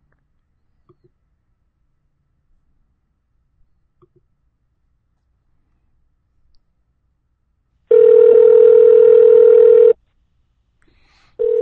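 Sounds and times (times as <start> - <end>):
electronic telephone ringback tone of an outgoing phone call: 7.9 - 10.0, 11.4 - 11.5.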